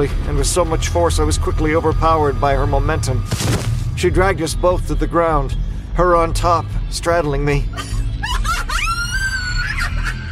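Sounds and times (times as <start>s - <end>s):
speech: 0.0s - 8.0s
low rumbling background: 0.0s - 10.3s
laughter: 7.7s - 10.3s
eerie cackling scream from a woman: 8.3s - 10.3s.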